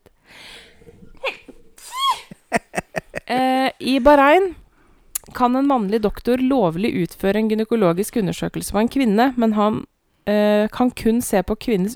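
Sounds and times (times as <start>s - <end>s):
laughter: 0.9s - 3.6s
person sneezing: 1.3s - 3.4s
speech: 3.3s - 4.6s, 5.4s - 11.9s.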